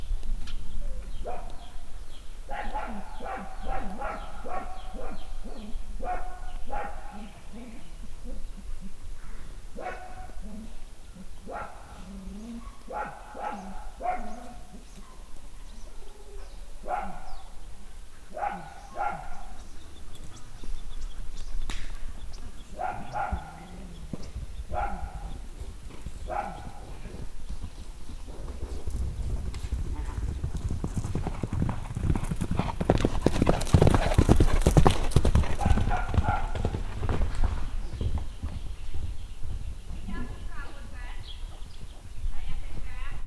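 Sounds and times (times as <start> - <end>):
horse in a farmyard: 0.2 - 43.2
dog galloping in a farmyard: 22.8 - 43.2.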